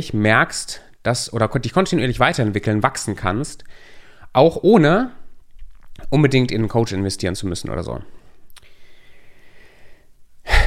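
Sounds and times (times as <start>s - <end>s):
speech: 0.0s - 5.2s, 6.1s - 8.2s
deep breath in: 3.7s - 4.3s, 8.2s - 10.6s.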